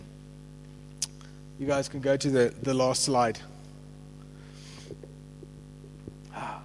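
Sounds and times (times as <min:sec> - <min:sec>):
steady low electrical hum: 0:00.0 - 0:06.6
speech: 0:01.6 - 0:03.5
rough breathy gasps: 0:06.2 - 0:06.6.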